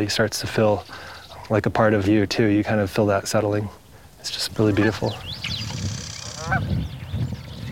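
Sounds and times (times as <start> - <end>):
speech: 0.0 - 5.6
geese honking in open country: 4.5 - 6.8.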